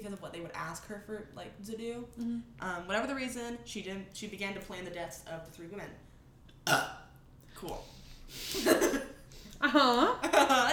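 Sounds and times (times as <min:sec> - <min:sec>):
speech: 0:00.0 - 0:07.0, 0:07.6 - 0:09.0, 0:09.6 - 0:10.7
brief throaty vocal sound: 0:06.6 - 0:07.1
low gurgling burp: 0:06.6 - 0:07.1.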